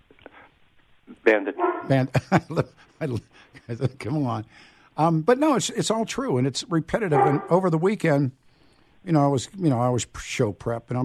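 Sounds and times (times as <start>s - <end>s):
speech: 1.3s - 8.4s, 9.0s - 11.0s
dog barking: 1.6s - 1.9s, 7.1s - 7.6s.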